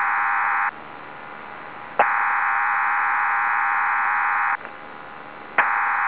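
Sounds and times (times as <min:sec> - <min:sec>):
PSK 16 channel data signal: 0:00.0 - 0:00.8, 0:02.0 - 0:04.7, 0:05.6 - 0:06.0.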